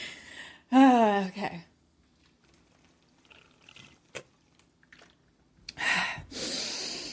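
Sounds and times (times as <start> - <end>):
person drinking water: 2.1 - 5.8.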